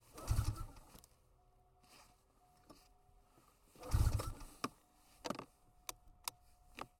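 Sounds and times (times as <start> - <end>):
Arctic Cat M 8000 snowmobile engine failing to start, heard at the engine intake: 0.1 - 0.8, 3.8 - 4.6.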